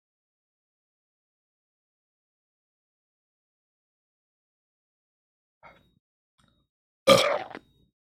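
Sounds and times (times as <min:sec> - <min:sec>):
weak throaty burp: 0:07.1 - 0:07.6.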